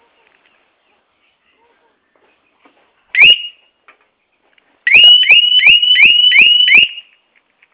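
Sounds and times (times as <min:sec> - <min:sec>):
V-Rod motorcycle alarm: 0:04.9 - 0:07.2.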